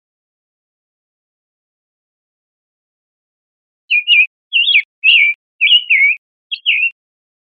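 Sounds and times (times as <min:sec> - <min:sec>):
Summer tanager calls: 0:03.9 - 0:07.0.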